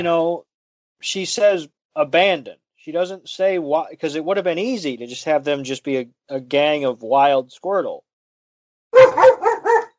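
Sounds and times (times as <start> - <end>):
speech: 0.0 - 8.1
dog barking: 8.9 - 9.9.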